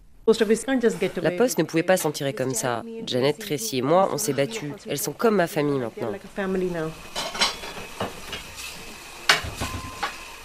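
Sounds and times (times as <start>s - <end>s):
soft kitchen noise: 0.0s - 10.4s
speech: 0.3s - 7.3s
dishes clinking and clattering at a sink: 7.0s - 10.4s.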